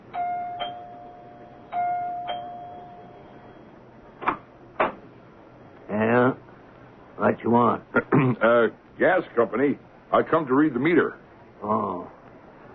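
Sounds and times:
two-tone house doorbell chiming: 0.1s - 3.7s
speech: 7.3s - 12.2s.

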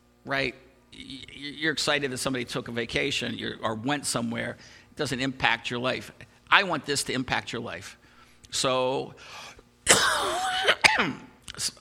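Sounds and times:
speech: 0.2s - 11.7s
person coughing during a talk: 9.9s - 11.4s
throat clearing: 9.9s - 11.4s.

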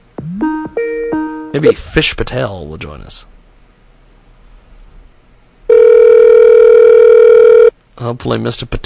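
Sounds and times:
speech: 1.5s - 3.3s, 8.0s - 8.8s
internet call dialing tone: 5.7s - 7.7s.

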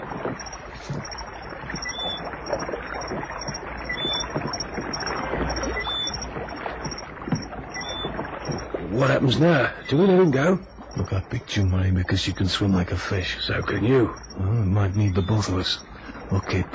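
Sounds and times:
faint high whine: 0.0s - 16.7s
rowboat oars dipping and splashing through water: 0.0s - 16.7s
speech: 0.4s - 1.2s, 9.0s - 16.7s.

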